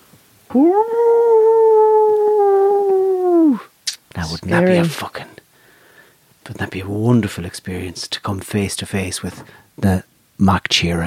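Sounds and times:
speech: 0.5 - 1.3, 4.5 - 5.3, 6.5 - 11.0
wolf howling a long mournful note: 0.5 - 3.7.

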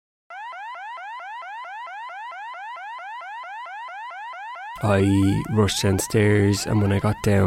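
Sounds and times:
house alarm electronic siren: 0.3 - 7.4
speech: 4.8 - 7.4.

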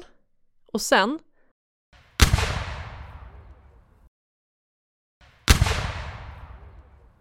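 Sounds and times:
speech: 0.7 - 1.3
cannon blasts: 2.0 - 3.7, 5.2 - 7.1.

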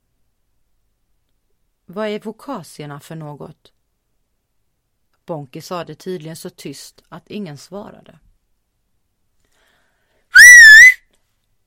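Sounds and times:
speech: 1.9 - 3.8, 5.3 - 8.3
loud piercing two-finger whistle: 10.4 - 11.0.

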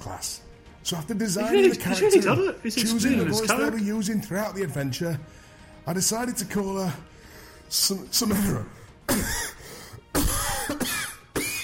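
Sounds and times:
speech: 0.0 - 9.5
coughing and throat clearing: 8.3 - 11.6.

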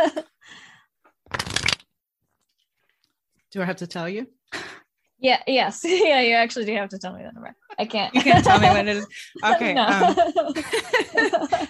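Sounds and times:
playing cards being shuffled: 1.3 - 1.8
speech: 3.5 - 4.4, 5.2 - 11.6
laughter: 7.7 - 11.6.

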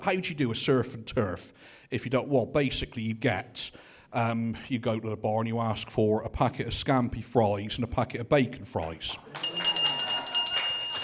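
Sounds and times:
speech: 0.0 - 9.5
bright high-pitched bell ringing: 9.4 - 11.0.

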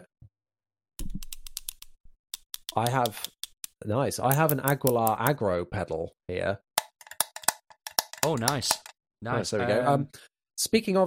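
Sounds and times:
two plastic pens clicked together: 1.2 - 5.4, 6.8 - 8.9
speech: 2.8 - 6.7, 8.2 - 11.0.

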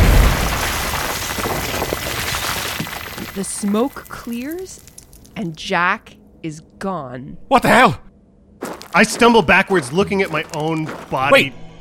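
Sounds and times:
bomb detonating inside a cavern: 0.0 - 3.4
speech: 3.4 - 8.1, 8.9 - 11.7.

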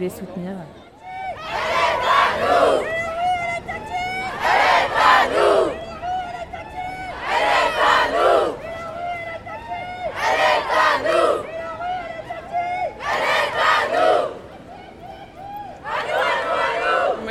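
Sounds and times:
speech: 0.0 - 0.8
large crowd chanting shouted slogans outdoors at a feminist march in Nantes: 0.8 - 17.3.

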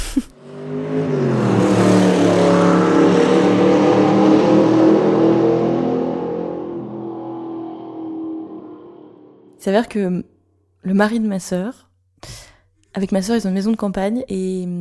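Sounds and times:
vintage collector car engine starting up and revving: 0.3 - 9.6
speech: 9.6 - 12.4, 13.0 - 14.8.

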